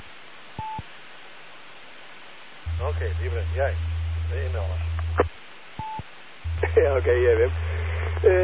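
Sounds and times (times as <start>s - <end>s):
steady hiss: 0.0s - 8.4s
speech: 2.9s - 5.3s, 6.8s - 8.4s
telephone touch-tone dialing beeps: 5.8s - 6.0s.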